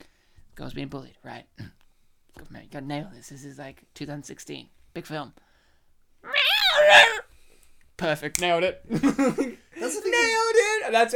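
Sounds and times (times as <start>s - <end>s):
speech: 0.6s - 1.8s, 2.4s - 5.5s, 6.8s - 7.2s, 8.0s - 11.1s
voice imitating a cat meow: 6.3s - 7.2s.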